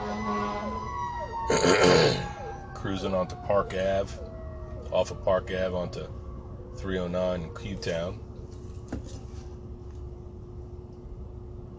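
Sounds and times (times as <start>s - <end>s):
fire engine sirens passing by in Quakertown: 0.0s - 8.7s
speech: 1.5s - 2.0s, 2.9s - 6.2s, 6.8s - 8.2s.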